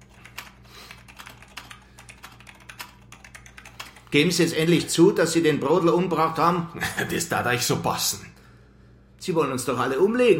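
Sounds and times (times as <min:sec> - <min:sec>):
typing on a computer keyboard: 0:00.0 - 0:04.1
speech: 0:04.1 - 0:08.4, 0:09.2 - 0:10.3.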